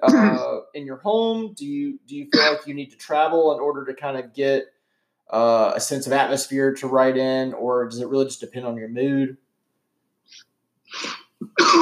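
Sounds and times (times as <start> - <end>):
harsh coughing: 0.0 - 0.6, 2.3 - 2.7, 11.0 - 11.8
speech: 0.3 - 9.4, 10.3 - 11.8.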